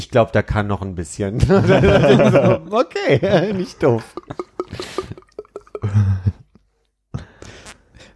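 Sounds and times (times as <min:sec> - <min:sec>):
speech: 0:00.0 - 0:05.1
laughter: 0:01.4 - 0:06.4
voice imitating syrup being poured with mouth noises: 0:03.9 - 0:06.3.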